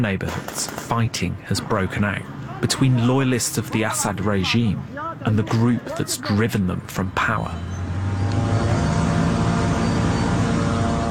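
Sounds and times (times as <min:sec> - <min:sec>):
speech: 0:00.0 - 0:08.6
surveillance drones droning overhead: 0:06.9 - 0:11.0.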